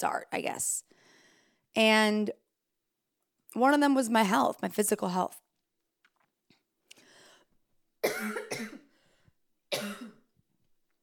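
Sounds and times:
speech: 0.0s - 0.9s, 1.8s - 2.4s, 3.5s - 5.4s
person with harsh hacking coughs: 8.0s - 8.9s, 9.7s - 10.3s.

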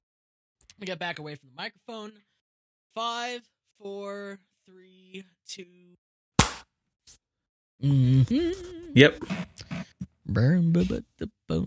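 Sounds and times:
speech: 0.8s - 2.3s, 2.9s - 6.0s, 7.8s - 9.5s, 10.3s - 11.6s
hand clap for audio sync: 6.4s - 6.7s.

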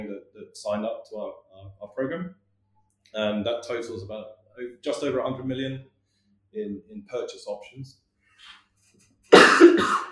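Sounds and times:
speech: 0.6s - 2.4s, 3.1s - 5.9s, 6.5s - 8.6s, 9.5s - 10.1s
person coughing: 9.4s - 10.1s.

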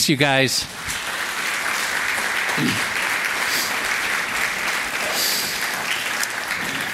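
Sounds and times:
speech: 0.0s - 1.2s, 2.6s - 3.0s
sizable crowd applauding: 0.6s - 6.9s.

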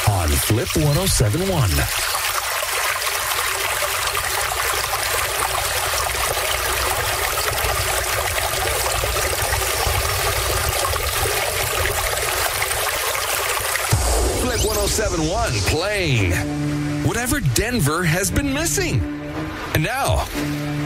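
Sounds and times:
babbling brook flowing over stones: 0.0s - 14.0s
speech: 0.4s - 2.2s, 15.0s - 19.2s, 19.8s - 20.8s.

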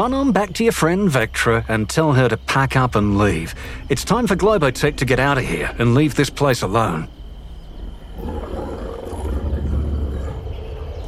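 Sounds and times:
speech: 0.0s - 7.2s
large wolves growling: 7.9s - 11.0s.

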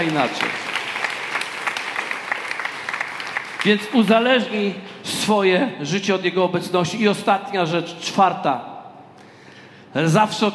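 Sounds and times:
speech: 0.0s - 0.7s, 3.6s - 8.7s, 10.0s - 10.5s
audience applause: 0.0s - 3.9s.

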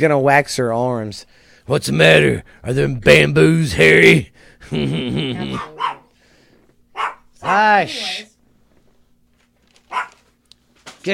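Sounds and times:
speech: 0.0s - 5.8s, 7.4s - 8.3s
laughter: 4.6s - 5.8s
dog barking: 5.5s - 6.1s, 6.9s - 7.7s, 9.9s - 10.3s.

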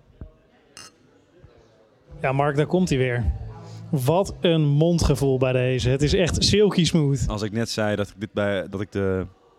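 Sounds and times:
faint room murmur: 0.0s - 9.5s
beer glasses clinking in a toast: 0.8s - 1.0s
speech: 2.2s - 9.4s.

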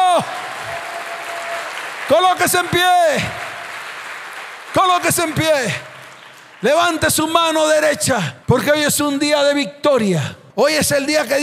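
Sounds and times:
large audience applauding at a church service: 0.0s - 7.8s
speech: 0.2s - 0.4s, 2.1s - 3.4s, 4.7s - 5.9s, 6.6s - 11.4s.

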